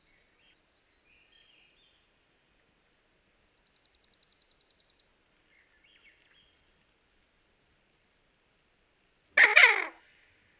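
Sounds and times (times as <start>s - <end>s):
Barrow's goldeneye giving a harsh squawking call: 9.4s - 10.0s.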